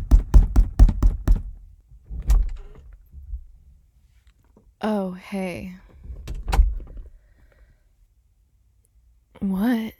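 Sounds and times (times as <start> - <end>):
heavy forceful knocks on a door: 0.0 - 1.6
speech: 4.8 - 5.8, 9.4 - 9.9.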